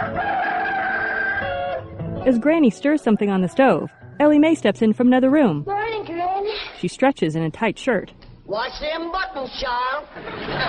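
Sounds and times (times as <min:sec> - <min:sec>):
rooster crowing: 0:00.0 - 0:01.9, 0:03.0 - 0:04.4
speech: 0:02.2 - 0:05.7, 0:06.8 - 0:10.6.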